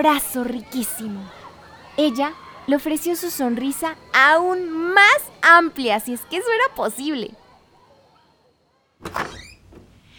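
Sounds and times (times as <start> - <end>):
speech: 0.0 - 1.4, 2.0 - 7.4, 9.0 - 9.2
house door swinging open with a thud and creak: 9.0 - 10.0.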